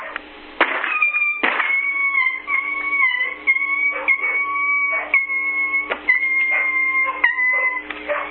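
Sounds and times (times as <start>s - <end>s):
steady high-pitched whining tone: 0.0s - 8.2s
dog barking in sharp bursts: 2.2s - 5.3s, 6.2s - 8.2s.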